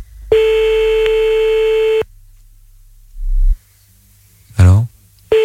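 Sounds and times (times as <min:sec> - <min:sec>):
phone line noise: 0:00.3 - 0:02.0
telephone ring tone while calling back a listener: 0:00.3 - 0:02.0.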